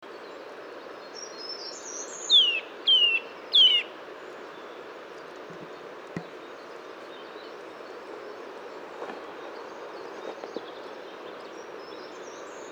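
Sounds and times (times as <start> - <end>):
Eurasian nuthatch Sitta europaea descending whistled calls: 2.3 - 3.9.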